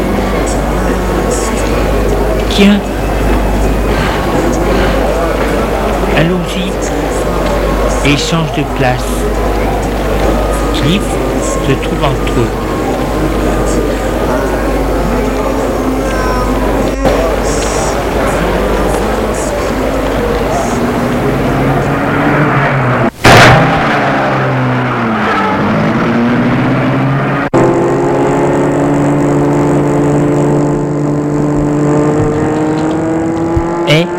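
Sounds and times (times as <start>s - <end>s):
car engine revving as the car speeds away: 0.0s - 34.1s
speech: 2.6s - 3.0s, 8.0s - 9.4s, 10.8s - 14.0s.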